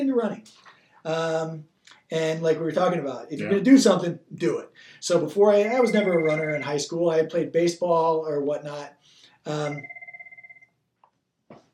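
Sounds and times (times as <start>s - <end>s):
speech: 0.0s - 10.0s
telephone bell ringing: 5.7s - 6.8s, 9.6s - 10.8s.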